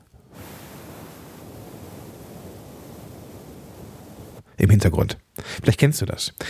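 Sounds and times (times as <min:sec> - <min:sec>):
steady hiss of microphone background noise: 0:00.0 - 0:06.4
speech: 0:04.6 - 0:06.4.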